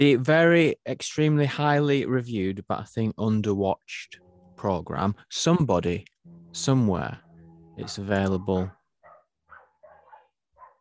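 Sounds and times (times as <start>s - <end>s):
speech: 0.0s - 7.2s, 7.8s - 8.8s
dog barking: 7.8s - 8.2s, 9.0s - 10.7s.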